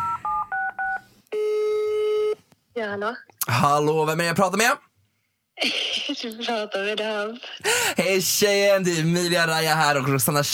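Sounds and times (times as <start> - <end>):
long steady phone ringback tone: 0.0 - 2.4
speech: 2.8 - 4.9, 5.6 - 10.5.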